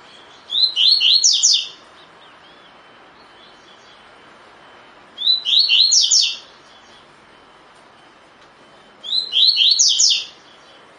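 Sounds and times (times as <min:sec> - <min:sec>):
Double-collared seedeater song in the tui tui style: 0:00.0 - 0:04.2, 0:05.2 - 0:07.2, 0:09.0 - 0:10.7.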